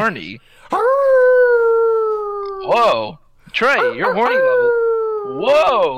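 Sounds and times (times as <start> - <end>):
speech: 0.0 - 1.0, 2.6 - 5.9
person imitating a dog howling: 0.7 - 2.8, 3.8 - 5.9.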